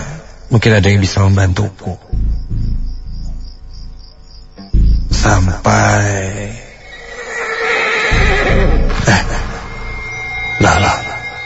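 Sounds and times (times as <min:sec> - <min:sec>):
speech: 0:00.5 - 0:02.1, 0:05.2 - 0:06.6
low rumble: 0:02.0 - 0:07.0, 0:08.1 - 0:11.4
horse neighing: 0:06.4 - 0:11.4.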